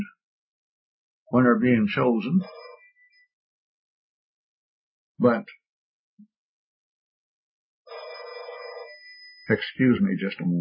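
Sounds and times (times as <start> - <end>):
speech: 1.3 - 2.7, 5.2 - 5.6, 9.5 - 10.6
telephone ringing: 2.4 - 3.0, 7.9 - 9.6.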